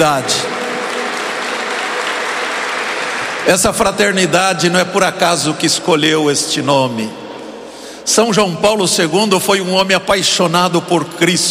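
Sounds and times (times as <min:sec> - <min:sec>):
speech: 0:00.0 - 0:00.6, 0:03.4 - 0:07.2, 0:08.0 - 0:11.4
audience applause at a religious gathering: 0:00.0 - 0:04.1.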